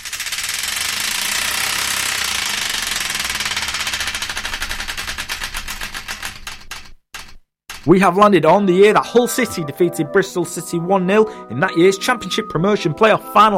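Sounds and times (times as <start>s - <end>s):
prize wheel spinning and clicking: 0.0s - 7.9s
speech: 7.8s - 13.5s.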